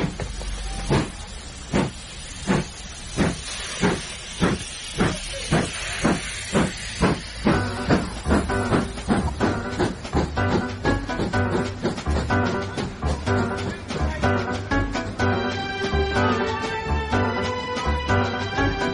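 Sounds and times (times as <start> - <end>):
steam locomotive hissing and chuffing as it pulls away: 0.0 - 18.9.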